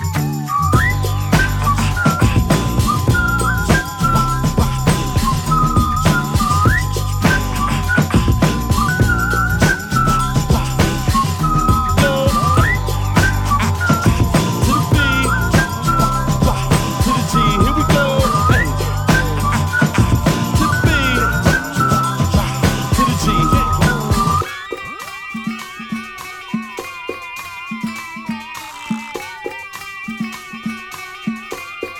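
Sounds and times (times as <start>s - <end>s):
steady thumping beat with bass: 0.0s - 24.5s
person whistling a bright bouncing melody while walking down the street: 0.0s - 25.9s
high tinkling layer: 0.0s - 31.9s.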